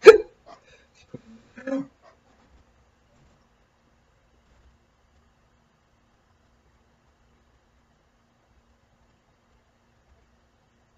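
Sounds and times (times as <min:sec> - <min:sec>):
hiccup: 0:00.0 - 0:00.6.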